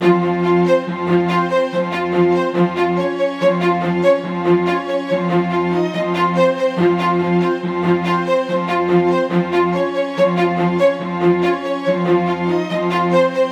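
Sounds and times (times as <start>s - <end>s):
trap music with string ensemble in F minor at 142 bpm: 0.0s - 13.5s.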